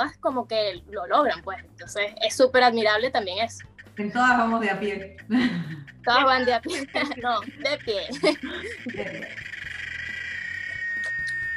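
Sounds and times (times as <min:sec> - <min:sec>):
speech: 0:00.0 - 0:09.6
high-pitched electronic buzzer droning with pulsing warble: 0:03.6 - 0:11.5
laughter: 0:04.8 - 0:09.4.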